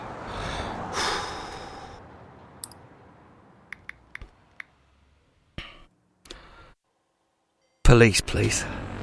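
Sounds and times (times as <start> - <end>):
long loud deep breath: 0.2 - 2.1, 5.6 - 6.8
sharp clicks: 3.7 - 4.7
speech: 7.9 - 8.9.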